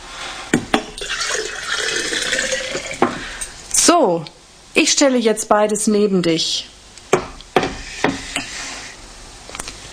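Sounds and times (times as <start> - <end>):
old water being poured out: 1.0 - 3.1
speech: 3.9 - 6.7.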